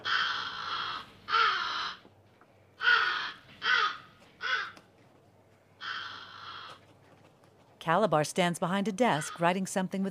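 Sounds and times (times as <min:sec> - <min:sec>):
caged blackbird cawing in harsh raspy bursts: 0:00.0 - 0:02.1, 0:02.7 - 0:04.9, 0:05.7 - 0:07.0, 0:09.1 - 0:09.5
speech: 0:07.8 - 0:10.1.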